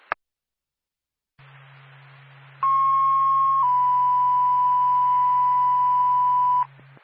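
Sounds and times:
low radio hum and static: 1.4 - 7.0
fire department radio dispatch alert tone for a fire alarm activation: 2.6 - 6.7.

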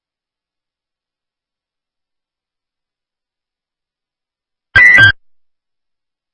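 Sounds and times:
EMS electronic dispatch alarm test tone: 4.8 - 5.2.

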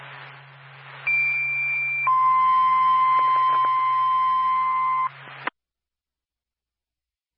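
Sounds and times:
fire department dispatch paging tones over a radio channel: 1.0 - 5.2.

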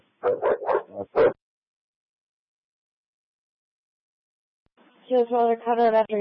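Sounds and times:
dog barking: 0.2 - 1.4
speech: 0.3 - 1.4, 5.1 - 6.1.

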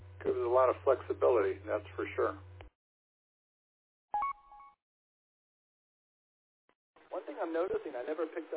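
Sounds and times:
speech: 0.5 - 2.5, 7.4 - 8.5
radio two-tone roger beep at end of push-to-talk transmission: 4.2 - 4.8.

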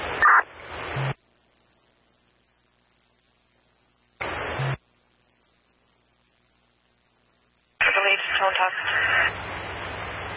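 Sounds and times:
crackly dispatch radio transmission with voice and static: 0.0 - 1.2, 7.8 - 9.4
radio squelch burst: 0.0 - 1.2, 7.8 - 10.0.

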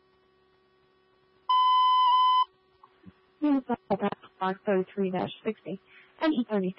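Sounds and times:
building alarm steady piercing electronic tone: 1.5 - 2.5
speech: 3.4 - 6.7.

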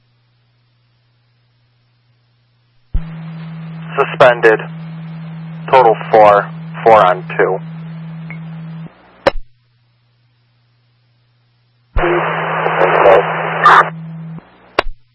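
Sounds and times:
low hum: 0.0 - 15.1
harsh hissing two-way radio static: 3.0 - 9.3, 12.0 - 14.9
speech: 4.0 - 4.8, 5.8 - 7.7.

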